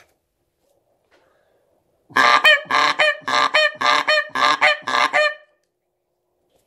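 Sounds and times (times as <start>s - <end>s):
Canada goose honking: 2.1s - 5.5s.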